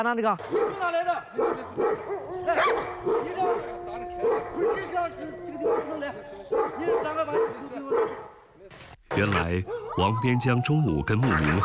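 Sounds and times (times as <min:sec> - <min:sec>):
speech: 0:00.0 - 0:11.6
female and large male wolf fighting, snarling and yelping: 0:01.4 - 0:08.3, 0:09.6 - 0:11.6.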